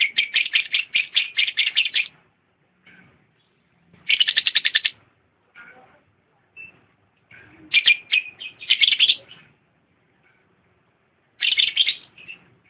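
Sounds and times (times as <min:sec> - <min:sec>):
champion lovebird song of harsh buzzy chattering bursts: 0:00.0 - 0:02.2, 0:04.0 - 0:05.0, 0:07.7 - 0:09.5, 0:11.4 - 0:12.5.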